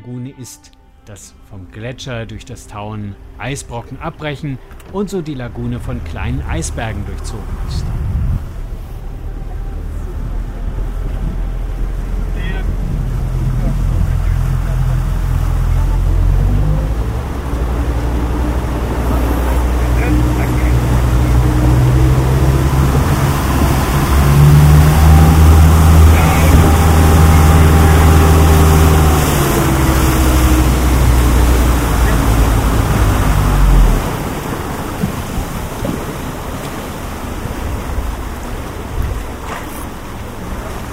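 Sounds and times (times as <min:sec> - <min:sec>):
speech: 0:00.0 - 0:08.1
boat motor drone in a glacier lagoon: 0:02.8 - 0:40.9
rushing wind noise on a boat ride: 0:07.3 - 0:40.9.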